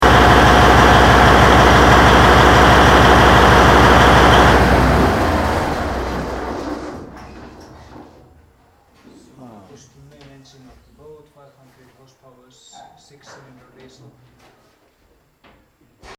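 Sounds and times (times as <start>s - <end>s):
diesel engine shutting off: 0.0s - 8.4s.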